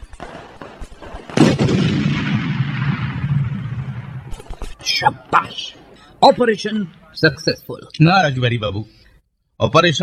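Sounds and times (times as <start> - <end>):
bomb explosion: 0.2 - 4.8
speech: 5.0 - 9.0, 9.6 - 10.0.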